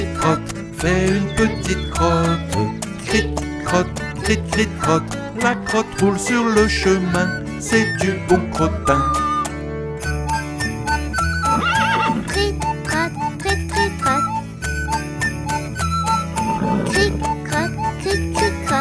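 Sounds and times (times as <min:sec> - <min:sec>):
clip-clop of trotting horse hooves: 0:00.0 - 0:06.2, 0:11.2 - 0:12.5, 0:15.5 - 0:17.5
jingly musical backing: 0:00.0 - 0:18.7
speech: 0:00.2 - 0:09.3
horse whinnying: 0:11.4 - 0:12.3, 0:16.2 - 0:17.4.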